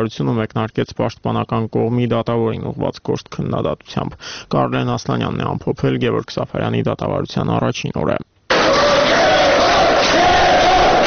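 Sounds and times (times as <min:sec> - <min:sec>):
speech: 0:00.0 - 0:08.8
crowd of supporters chanting in unison to greet an opposition activist: 0:08.5 - 0:11.0.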